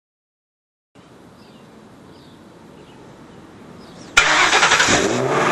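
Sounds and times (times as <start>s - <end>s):
motor starting up: 4.2s - 5.4s.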